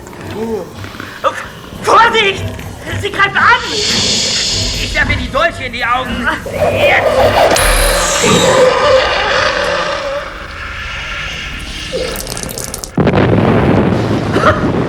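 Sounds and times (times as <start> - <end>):
crackling roar of debris and rumble: 0.0 - 14.8
speech: 0.4 - 1.5, 2.1 - 9.2
explosion sound effect: 6.4 - 14.2.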